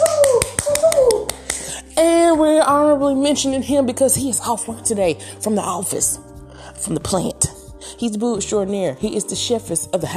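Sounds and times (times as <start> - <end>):
sharp evenly spaced claps, applause for an honored guest: 0.0 - 1.7
speech: 2.6 - 7.4, 8.0 - 10.1.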